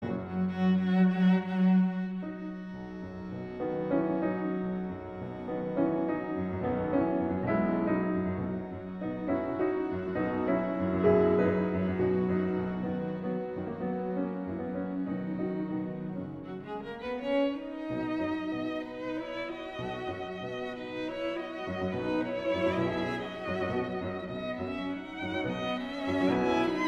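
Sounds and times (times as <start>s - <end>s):
piano trio playing: 0.0s - 26.8s.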